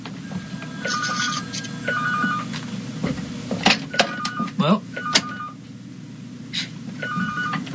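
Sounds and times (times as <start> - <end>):
steady low hum: 0.0 - 7.7
telephone ringing in a radio studio during a live broadcast: 0.2 - 2.6, 3.9 - 5.6, 7.0 - 7.7.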